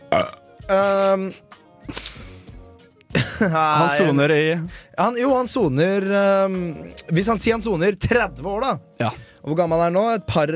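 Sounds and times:
loud drawn-out burp: 0:00.0 - 0:00.5
speech: 0:00.7 - 0:02.0, 0:03.4 - 0:10.5.

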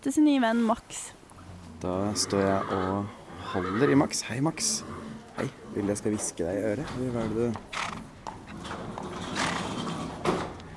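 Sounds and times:
speech: 0:00.0 - 0:01.2, 0:01.8 - 0:08.0
horse moving about in a stable with rustling and soft thuds: 0:01.2 - 0:10.7
horse snorting: 0:01.4 - 0:06.2, 0:06.8 - 0:10.2.

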